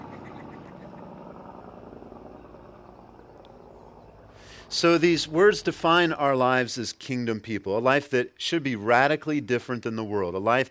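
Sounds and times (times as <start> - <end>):
large truck engine rumbling passing by outside: 0.0 - 7.0
speech: 4.6 - 10.6.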